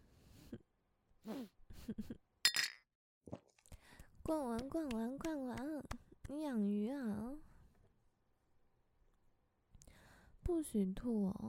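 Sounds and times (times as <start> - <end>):
speech: 1.9 - 2.2, 4.3 - 7.5, 10.5 - 11.4
glasses clinking in a toast: 2.5 - 2.8.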